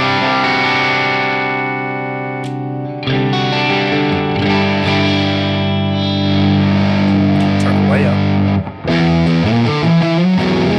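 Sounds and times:
electric guitar through a drive pedal at low gain playing chords: 0.0s - 10.7s.

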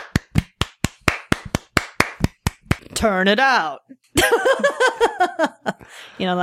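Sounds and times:
hands clapping: 0.0s - 2.9s
speech: 3.0s - 6.4s.

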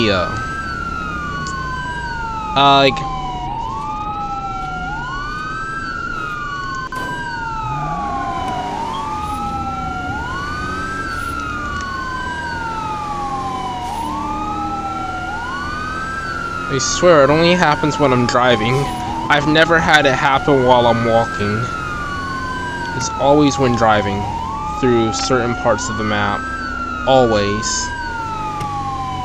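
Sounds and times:
speech: 0.0s - 0.5s, 2.6s - 3.1s, 16.7s - 21.8s, 23.0s - 26.5s, 27.1s - 28.0s
emergency vehicle siren wailing: 0.0s - 29.2s.

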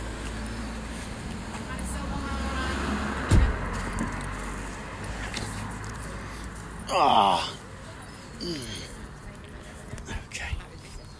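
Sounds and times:
two cars moving along a road: 0.0s - 11.1s
thump: 3.3s - 3.6s
faint voices: 5.1s - 11.1s
speech: 6.9s - 7.6s.

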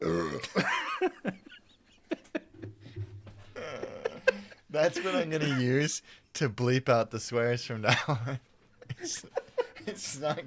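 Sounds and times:
loud burp: 0.0s - 0.6s
laughter: 0.6s - 5.8s, 7.8s - 10.4s
speech: 4.8s - 9.4s, 10.0s - 10.4s.

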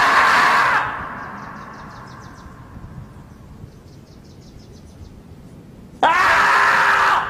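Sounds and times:
harsh screeching yells dubbed over a video: 0.0s - 1.8s, 6.0s - 7.2s
faint chirping insects: 0.0s - 6.1s.

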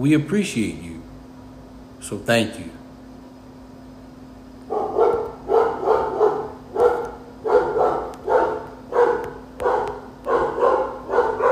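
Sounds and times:
speech: 0.0s - 0.9s, 2.0s - 2.8s
faint constant hum: 0.0s - 11.5s
dog barking: 4.7s - 11.5s.

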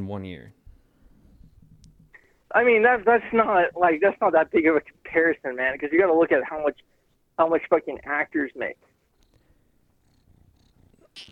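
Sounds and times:
speech: 0.0s - 0.6s, 2.5s - 8.9s, 11.2s - 11.3s
cat purring: 9.2s - 11.3s.

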